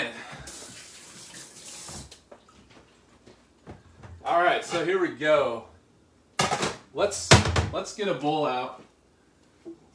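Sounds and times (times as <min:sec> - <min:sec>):
tap water filling an instant macaroni and cheese cup: 0:00.4 - 0:02.7
speech: 0:04.3 - 0:05.7, 0:06.9 - 0:08.9.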